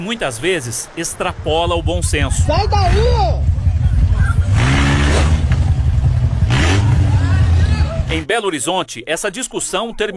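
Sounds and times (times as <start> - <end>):
speech: 0.0 - 3.5, 8.1 - 10.1
car engine revving hard as driver accelerates: 2.1 - 8.3.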